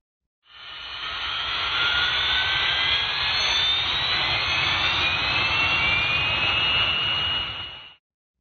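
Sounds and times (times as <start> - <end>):
aircraft jet engine spun up for starting by standby turbine-powered generator airflow: 0.5 - 8.0.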